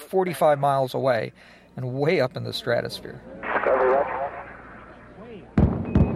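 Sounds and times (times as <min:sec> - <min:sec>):
speech: 0:00.1 - 0:04.2
murmur: 0:02.3 - 0:06.1
Space Shuttle double sonic boom: 0:05.5 - 0:06.1.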